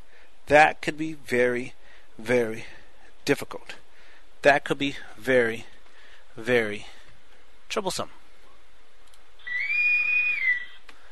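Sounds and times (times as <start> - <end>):
speech: 0.5 - 3.8, 4.4 - 5.7, 6.4 - 7.0, 7.7 - 8.2
shrill whistle blast signalling an end: 9.5 - 10.8.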